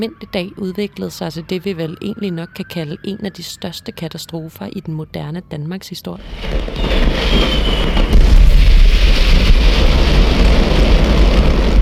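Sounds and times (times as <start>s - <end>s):
speech: 0.0s - 8.1s
hissing crackling fireworks: 6.2s - 11.8s
massive explosion of fireworks at a fireworks factory in Denmark: 6.2s - 11.8s.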